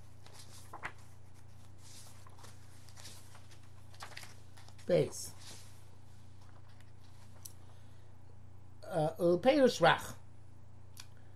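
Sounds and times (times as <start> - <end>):
book pages being turned: 0.0 - 7.6
steady low electrical hum: 0.0 - 11.3
speech: 4.9 - 5.4, 9.0 - 10.2.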